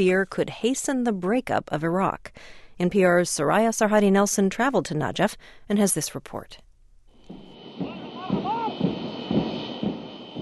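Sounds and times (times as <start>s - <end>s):
speech: 0.0s - 6.6s
passenger jet landing with high engine whine: 7.3s - 10.4s
voices: 7.3s - 10.4s.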